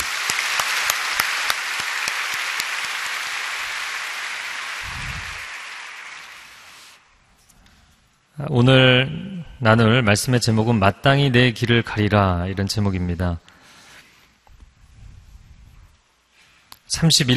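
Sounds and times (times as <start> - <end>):
large crowd clapping for a visiting music mission team: 0.0 - 7.0
speech: 8.4 - 13.5, 17.0 - 17.3.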